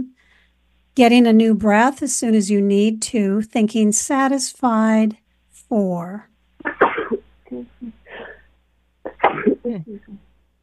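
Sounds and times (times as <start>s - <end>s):
speech: 1.0s - 6.8s, 9.6s - 10.2s
person sneezing: 6.6s - 8.4s, 9.1s - 9.7s.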